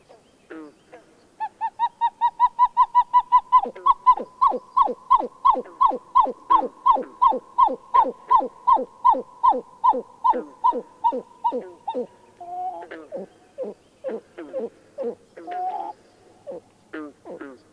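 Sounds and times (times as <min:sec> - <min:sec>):
pied-billed grebe cuckoo-like calls: 0:00.0 - 0:17.7.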